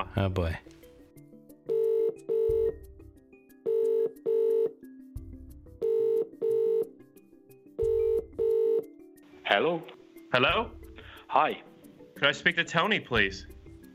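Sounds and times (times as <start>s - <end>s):
speech: 0.2s - 0.8s, 9.6s - 13.5s
telephone ringing back on an international call: 1.7s - 2.8s, 3.6s - 4.8s, 5.8s - 7.0s, 7.8s - 9.0s.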